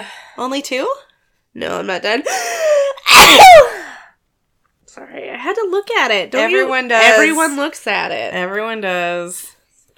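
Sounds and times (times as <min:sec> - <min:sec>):
speech: 0:00.0 - 0:02.6, 0:05.2 - 0:09.5
loud sneeze: 0:03.1 - 0:03.8.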